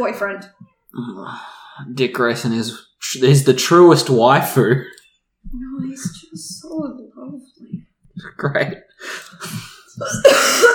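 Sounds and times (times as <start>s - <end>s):
speech: 0.0s - 10.7s
person coughing: 9.4s - 10.7s.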